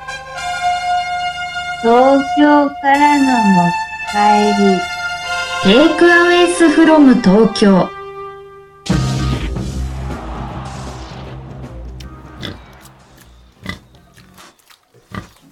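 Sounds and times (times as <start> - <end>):
speech: 1.8 - 4.9, 5.6 - 8.0
steady tone: 8.9 - 14.2
pigs grunting and snorting: 12.4 - 15.5.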